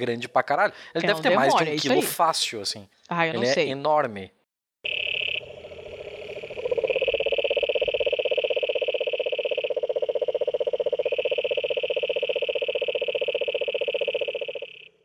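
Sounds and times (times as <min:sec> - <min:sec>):
speech: 0:00.0 - 0:05.0
cururu toad giving a long loud buzzing trill: 0:04.8 - 0:15.0.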